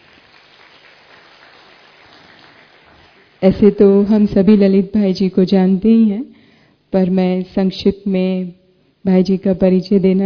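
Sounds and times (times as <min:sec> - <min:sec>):
audience applause: 0:00.0 - 0:03.4
speech: 0:03.4 - 0:10.2.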